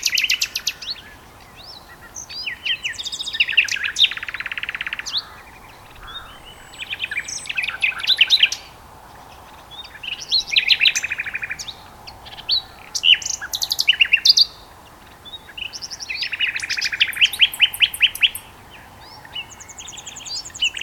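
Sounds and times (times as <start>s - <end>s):
faint background hiss: 0.0s - 20.8s
two common nightingales singing a duet on Westleton Heath: 0.0s - 20.8s.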